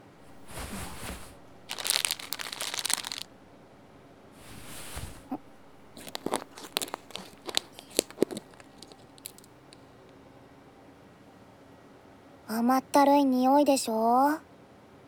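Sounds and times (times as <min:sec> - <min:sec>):
bag of white sugar crinkling and tearing as it is opened: 0:00.2 - 0:09.9
speech: 0:12.6 - 0:14.5.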